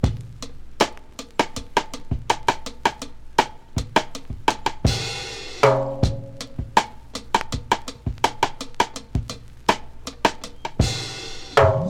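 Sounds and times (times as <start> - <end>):
drum beat in A key: 0.0 - 11.8.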